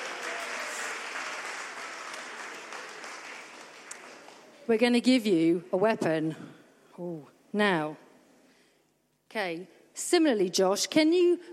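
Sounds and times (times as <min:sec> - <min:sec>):
crowd applauding for a volunteer: 0:00.0 - 0:04.7
speech: 0:04.7 - 0:08.0, 0:09.3 - 0:11.5.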